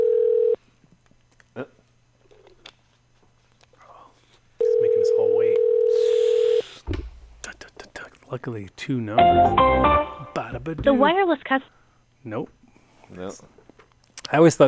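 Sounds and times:
outgoing phone call ringing tone: 0.0s - 0.6s, 4.6s - 6.6s
speech: 8.3s - 13.6s, 14.3s - 14.6s.

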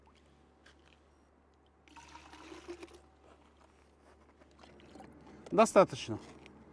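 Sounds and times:
puddle water trickling through a graphene filter: 1.8s - 3.7s
speech: 5.5s - 6.3s.

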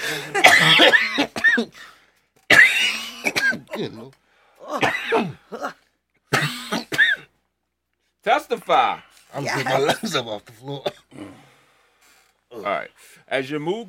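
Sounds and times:
person in a loud coughing fit: 0.0s - 1.9s, 2.5s - 7.4s, 9.6s - 10.2s
speech: 0.1s - 3.0s, 3.8s - 5.8s, 8.2s - 11.5s, 12.5s - 13.8s.

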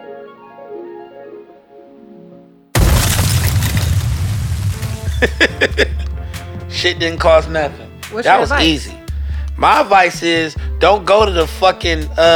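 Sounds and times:
soft melodic music: 0.0s - 2.7s, 4.8s - 12.3s
brick smashing through a glass window: 2.8s - 5.4s
noisy tumble of debris: 2.8s - 6.1s
laughter: 5.0s - 7.0s, 8.2s - 8.9s
speech: 5.2s - 5.9s, 6.8s - 9.0s, 9.6s - 12.3s.

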